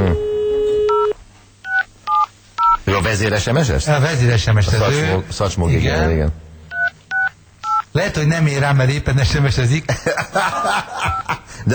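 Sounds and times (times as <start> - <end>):
telephone keypad dialing tones as a call is placed: 0.8 - 2.8, 6.7 - 7.8
speech: 3.1 - 6.4, 8.0 - 11.7
laughter: 9.9 - 11.7.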